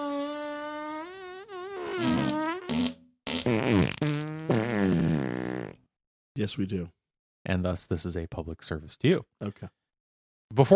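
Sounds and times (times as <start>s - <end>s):
loud buzzing fart noises: 0.0s - 5.8s
speech: 3.5s - 4.1s, 6.4s - 9.8s, 10.5s - 10.7s.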